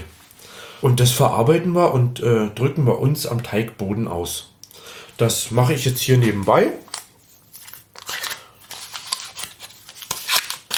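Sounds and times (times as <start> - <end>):
speech: 0.8 - 4.5, 5.2 - 6.9
butter paper packaging crinkling as butter is unwrapped: 7.5 - 10.7.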